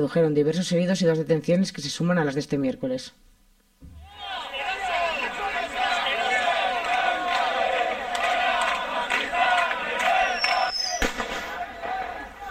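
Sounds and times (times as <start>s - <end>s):
speech: 0.0s - 3.3s
riot crowd shouting at a protest on a university campus: 3.9s - 12.4s
sharp bang: 11.0s - 11.6s.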